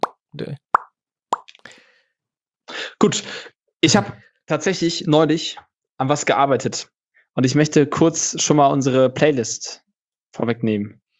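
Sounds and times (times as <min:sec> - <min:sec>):
speech: 0:00.4 - 0:00.6, 0:03.0 - 0:11.0
sharp hollow plops: 0:00.8 - 0:01.6.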